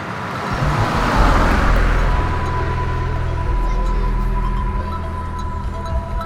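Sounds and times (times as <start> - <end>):
car passing by: 0.0 - 6.2
car tyre and engine whoosh: 0.4 - 6.2
thin constant whine: 0.5 - 6.2.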